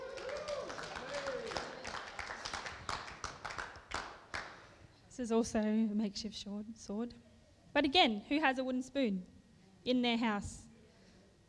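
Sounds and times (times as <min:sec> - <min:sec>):
excited voices whooping: 0:00.0 - 0:02.4
audience applause: 0:00.0 - 0:04.6
speech: 0:05.2 - 0:10.6.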